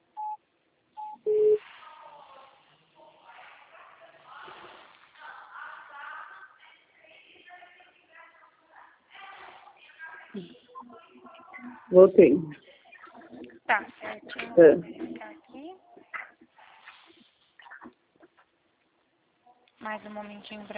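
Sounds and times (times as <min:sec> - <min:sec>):
telephone keypad tones while dialing a call: 0:01.0 - 0:01.6
speech: 0:10.4 - 0:11.0, 0:11.6 - 0:12.6, 0:14.4 - 0:15.0, 0:20.0 - 0:20.7
voice talking over a quieter telephone line: 0:10.4 - 0:15.3.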